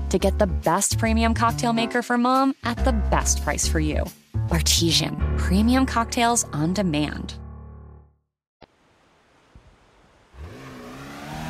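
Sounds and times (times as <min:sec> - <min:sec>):
speech: 0:00.1 - 0:07.4
Porsche car engine revving on a coastal highway: 0:10.3 - 0:11.4.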